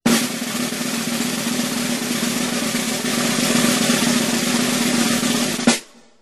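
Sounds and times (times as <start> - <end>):
drum roll: 0.0 - 6.2.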